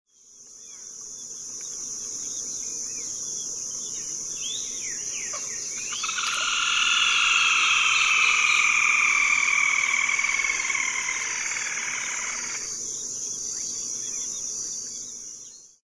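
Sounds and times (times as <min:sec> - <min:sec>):
Laterallus ruber calling: 0:05.3 - 0:12.7.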